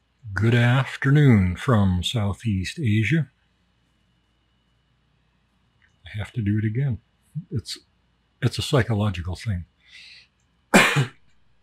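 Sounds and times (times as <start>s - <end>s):
speech: 0.4s - 3.4s, 6.1s - 10.2s, 10.9s - 11.2s
throat clearing: 10.8s - 11.2s.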